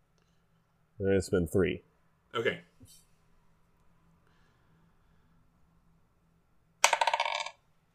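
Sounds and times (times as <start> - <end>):
speech: 1.0 - 3.0
dice rolling on a hard surface during a tabletop game: 6.8 - 7.7.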